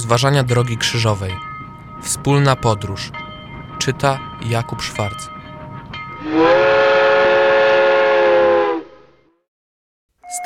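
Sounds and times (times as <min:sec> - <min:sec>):
low rumbling background: 0:00.0 - 0:09.0
speech: 0:00.1 - 0:05.4, 0:06.2 - 0:06.6
steam train whistle: 0:06.2 - 0:09.2.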